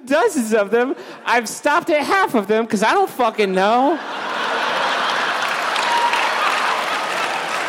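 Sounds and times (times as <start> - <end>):
speech: 0.0 - 4.2
crowd laughter: 3.8 - 7.6
large audience clapping: 4.4 - 7.6.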